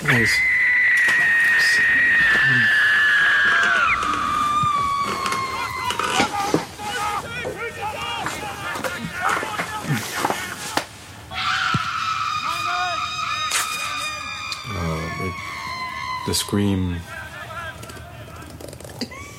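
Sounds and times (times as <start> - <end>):
quieter noise: 0.0 - 19.3
speech: 0.1 - 0.6, 16.3 - 17.1
loud shrill human screaming with wavering cries: 0.1 - 8.7, 11.3 - 18.2.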